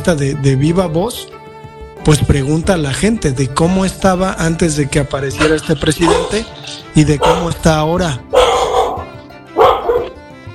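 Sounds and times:
speech: 0:00.0 - 0:01.4, 0:02.0 - 0:08.4
dog barking: 0:05.4 - 0:07.7, 0:08.3 - 0:10.2.

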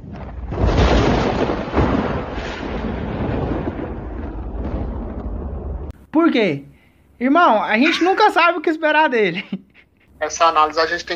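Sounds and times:
thunderclap and rolling thunder rumble: 0:00.0 - 0:05.9
speech: 0:06.2 - 0:09.6, 0:10.2 - 0:11.1.

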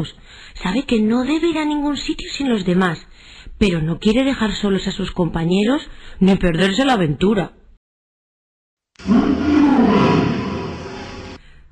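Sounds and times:
speech: 0:00.0 - 0:07.6, 0:09.0 - 0:09.4
lion roaring in a forest: 0:09.0 - 0:11.4.

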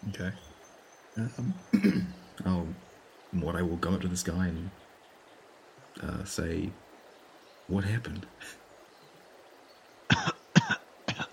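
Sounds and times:
speech: 0:00.1 - 0:00.5, 0:01.2 - 0:04.8, 0:06.0 - 0:06.8, 0:07.7 - 0:08.6
weak breathy coughs acted out by a person: 0:01.7 - 0:02.1, 0:10.1 - 0:11.3.

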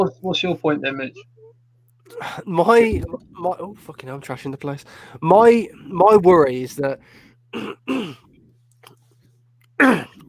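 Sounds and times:
speech: 0:00.0 - 0:01.4, 0:02.1 - 0:08.2, 0:09.8 - 0:10.2
steady low hum: 0:00.0 - 0:10.2
person coughing: 0:07.6 - 0:08.3, 0:09.8 - 0:10.2.

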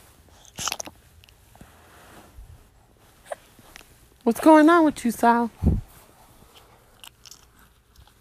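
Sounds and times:
hiccups: 0:03.2 - 0:03.5
speech: 0:04.3 - 0:05.6.

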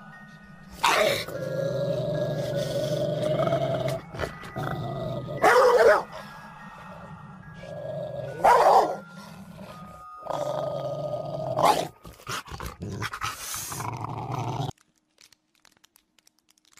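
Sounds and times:
several big dogs growling: 0:01.0 - 0:06.3, 0:06.9 - 0:14.7
several big dogs barking: 0:05.4 - 0:06.2, 0:08.3 - 0:09.2, 0:11.6 - 0:12.0.

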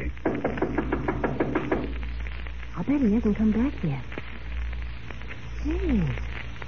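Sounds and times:
low hum: 0:00.0 - 0:06.6
firm knocking on a door: 0:00.2 - 0:02.0
speech: 0:02.9 - 0:04.1, 0:05.6 - 0:06.3.

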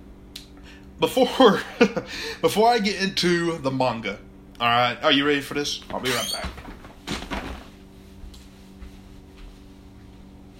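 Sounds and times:
speech: 0:01.0 - 0:06.6
chair creaking and squeaking: 0:05.9 - 0:07.6.

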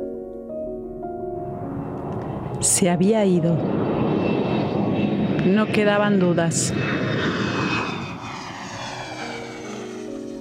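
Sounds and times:
airplane engine droning in flight: 0:00.6 - 0:10.3
speech: 0:02.6 - 0:03.9, 0:05.4 - 0:07.4.

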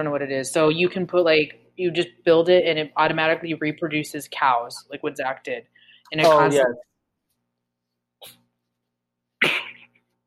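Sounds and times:
speech: 0:00.0 - 0:06.9, 0:08.2 - 0:08.4
person sneezing: 0:09.4 - 0:10.0.

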